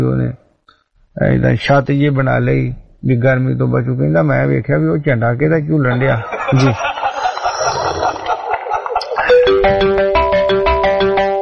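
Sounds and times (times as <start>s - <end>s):
speech: 0.0s - 0.4s, 1.2s - 6.9s, 9.6s - 10.0s
laughter: 5.9s - 9.6s
melodic electronic telephone ringtone: 9.2s - 11.3s.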